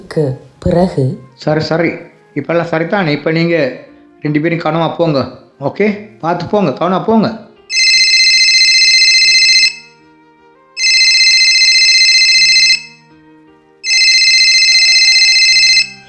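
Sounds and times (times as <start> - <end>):
speech: 0.2 - 7.4
shrill electronic mobile phone ringtone: 7.7 - 10.2, 10.8 - 13.2, 13.8 - 16.0.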